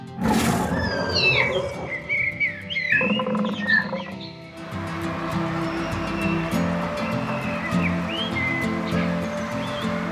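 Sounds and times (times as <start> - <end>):
deep rumbling tiger roars: 0.2 - 2.0
scattered bird chirps: 0.7 - 4.6, 5.6 - 10.0.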